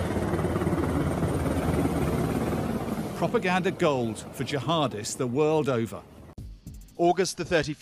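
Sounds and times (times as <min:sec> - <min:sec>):
American-supplied helicopter flying overhead in Kandahar: 0:00.0 - 0:04.9
speech: 0:03.2 - 0:06.1, 0:07.0 - 0:07.8.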